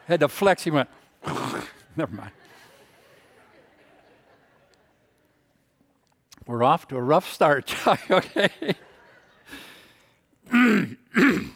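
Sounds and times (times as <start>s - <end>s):
speech: 0.1s - 1.4s, 2.0s - 2.6s, 6.4s - 8.8s
laughter: 0.6s - 5.4s, 7.6s - 10.1s
man clearing his throat: 10.4s - 11.5s.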